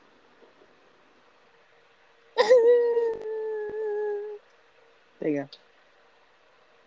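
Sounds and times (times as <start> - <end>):
person fake crying with a whimpering wail: 2.4 - 4.4
speech: 5.3 - 5.7.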